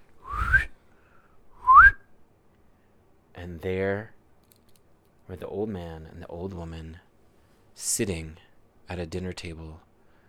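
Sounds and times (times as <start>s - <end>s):
person whistling short rising notes: 0.2s - 0.8s, 1.6s - 2.0s
speech: 3.4s - 4.2s, 5.3s - 7.1s, 7.8s - 9.9s.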